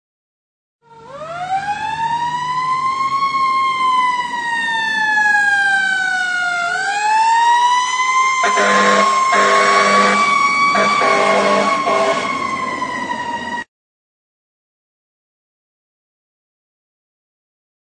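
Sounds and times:
emergency fire engine tone ringtone: 0.8s - 13.7s.

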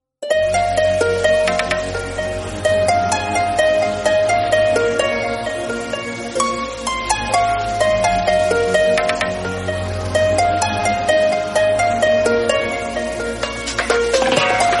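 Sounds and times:
background music ringtone: 0.2s - 14.7s.

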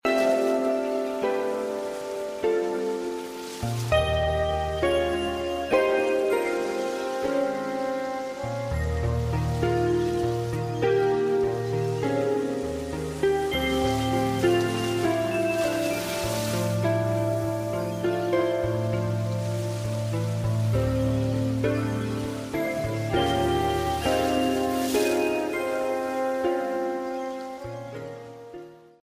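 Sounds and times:
calm ringtone music tone: 0.0s - 28.8s.

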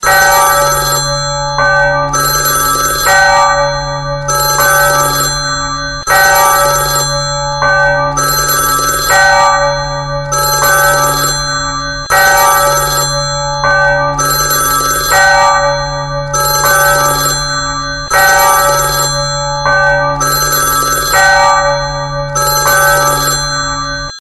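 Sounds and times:
phone church bell ringtone: 0.0s - 24.1s.

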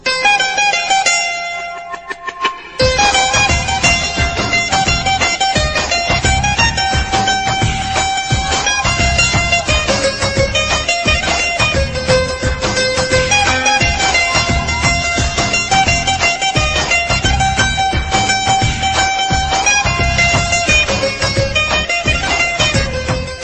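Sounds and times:
guitar ringtone: 0.3s - 22.7s.

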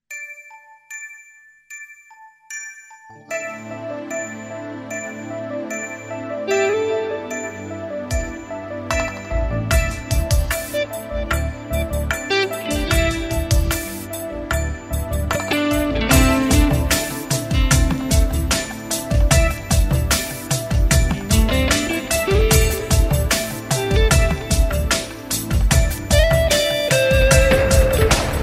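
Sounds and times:
melodious music ringtone: 0.0s - 28.4s.

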